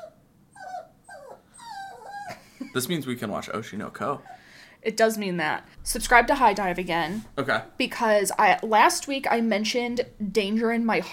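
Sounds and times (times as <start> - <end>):
puppy growling: 0.0 - 2.4
puppy whining: 0.0 - 2.7
speech: 2.8 - 11.1.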